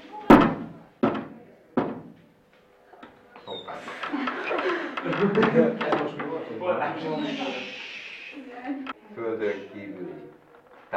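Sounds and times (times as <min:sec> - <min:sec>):
slow heavy resonant knocking: 0:00.3 - 0:02.3, 0:03.9 - 0:06.4
laughter: 0:03.7 - 0:08.8
speech: 0:03.8 - 0:07.8, 0:08.4 - 0:10.9.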